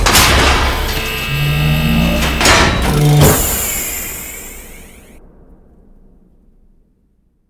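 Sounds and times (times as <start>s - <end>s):
airlock opening: 0.0s - 5.2s.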